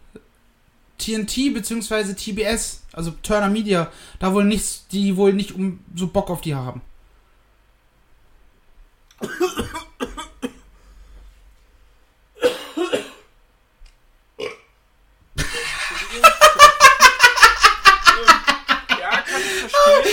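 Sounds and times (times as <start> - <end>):
speech: 1.0 - 6.9
harsh coughing fit: 9.2 - 10.7, 12.4 - 13.3
long loud rumbling burp: 14.4 - 14.8
laughter: 15.4 - 20.1.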